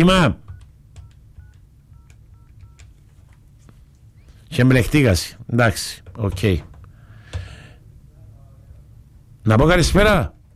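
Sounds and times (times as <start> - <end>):
speech: 0.0 - 0.4, 4.5 - 6.7, 9.5 - 10.5
telephone keypad tones: 0.4 - 3.0.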